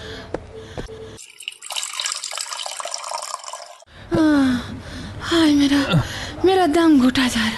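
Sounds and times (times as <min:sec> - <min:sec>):
water running from a tap: 0:01.2 - 0:03.8
speech: 0:05.4 - 0:07.5.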